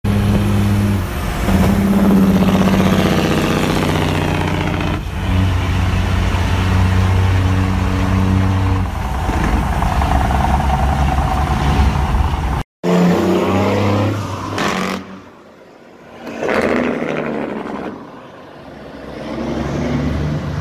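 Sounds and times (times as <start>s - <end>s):
semi truck engine: 0.0s - 20.5s.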